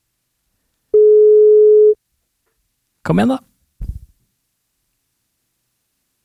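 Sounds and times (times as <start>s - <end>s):
electronic ringback tone of an unanswered outgoing phone call: 1.0s - 2.0s
speech: 3.1s - 3.5s.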